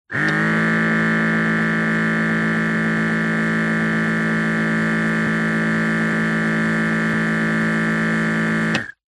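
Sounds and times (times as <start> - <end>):
hospital blood pressure machine running hum: 0.1 - 9.0.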